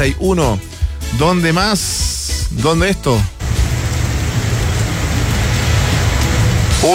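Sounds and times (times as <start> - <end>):
speech: 0.0 - 3.3
deep continuous rumble of an electrical storm in Linares: 3.4 - 6.8
steady dense rain hissing in Linares: 3.4 - 6.9.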